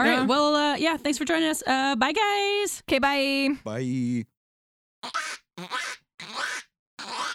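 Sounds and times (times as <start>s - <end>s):
speech: 0.0s - 4.3s, 5.0s - 6.0s
man imitating a cartoon duck quacking: 5.0s - 7.3s.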